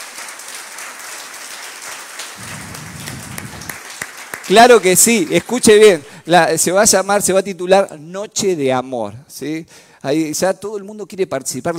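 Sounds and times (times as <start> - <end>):
church congregation applauding during a Sunday service: 0.0 - 6.0
speech: 4.5 - 11.7.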